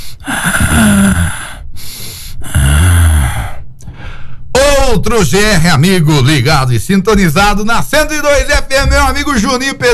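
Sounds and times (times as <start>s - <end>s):
deep breaths: 0.0s - 4.6s
speech: 4.9s - 9.9s.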